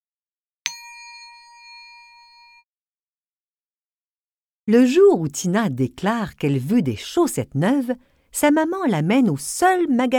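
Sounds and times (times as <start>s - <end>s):
small bell struck as a page-turn cue in a read-aloud children's story: 0.7s - 2.7s
speech: 4.7s - 10.1s.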